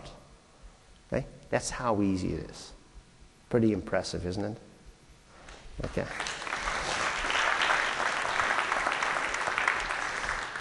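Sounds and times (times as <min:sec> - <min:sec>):
speech: 0:01.1 - 0:02.8, 0:03.5 - 0:04.7, 0:05.8 - 0:06.4
room full of people applauding: 0:06.1 - 0:10.5.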